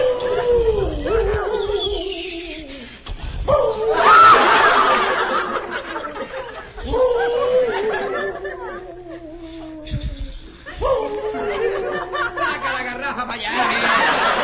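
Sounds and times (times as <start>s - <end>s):
person's voice imitating a wolf howl: 0.0s - 2.7s, 3.4s - 4.4s, 6.8s - 12.3s
breathy snickering and laughter: 4.0s - 9.7s, 10.5s - 12.7s, 13.6s - 14.4s.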